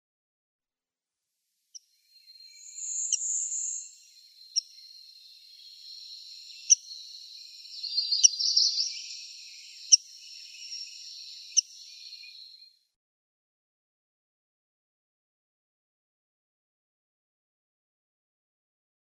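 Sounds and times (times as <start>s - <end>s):
Rose-breasted Grosbeak calls: 2.1s - 12.7s.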